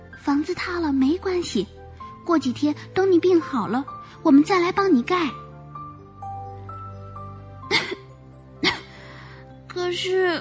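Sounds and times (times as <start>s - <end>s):
speech: 0.2s - 5.4s, 9.9s - 10.3s
voice imitating a sick hedgehog coughing: 7.7s - 8.9s.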